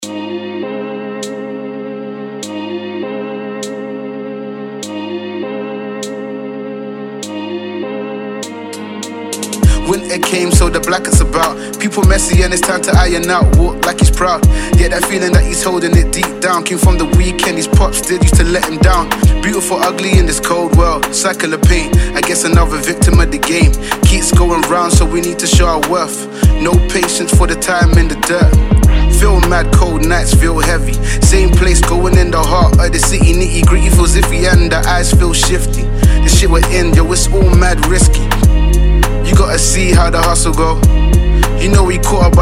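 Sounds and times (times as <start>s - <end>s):
lo-fi hip hop vocals: 8.4s - 42.3s.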